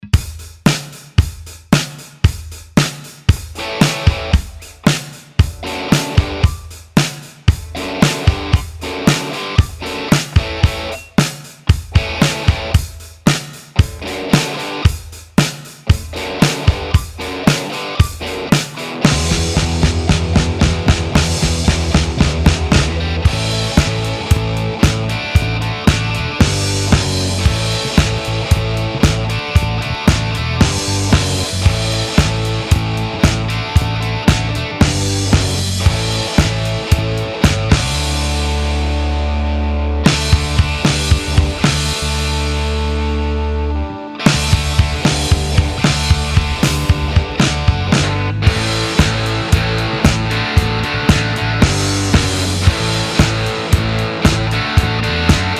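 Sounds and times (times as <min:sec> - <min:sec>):
backing music: 0:00.0 - 0:55.5.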